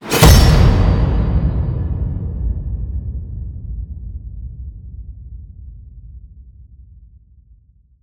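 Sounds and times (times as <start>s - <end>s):
massive cinematic hits: 0.0s - 4.0s.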